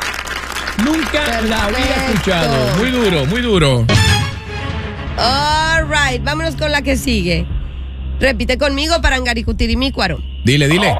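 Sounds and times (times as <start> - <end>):
applause: 0.0 - 3.7
speech: 0.8 - 4.1, 5.2 - 7.6, 8.2 - 10.9.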